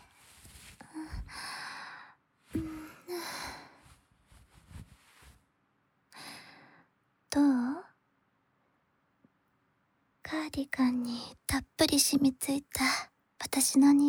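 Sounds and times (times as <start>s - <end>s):
heavy breathing in and out: 0.8s - 4.0s
speech: 10.5s - 14.0s.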